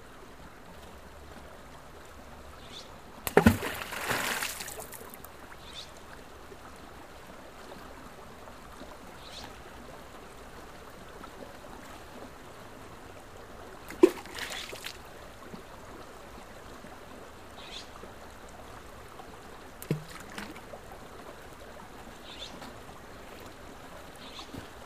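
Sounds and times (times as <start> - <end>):
steady low wash of flowing creek water: 0.0 - 24.8
rocks splashing into a creek pool: 3.2 - 5.2, 13.9 - 15.0, 19.8 - 20.6.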